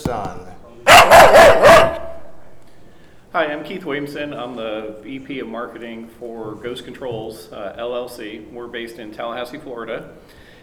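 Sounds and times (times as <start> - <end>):
dog barking: 0.8 - 2.9
speech: 3.4 - 10.4.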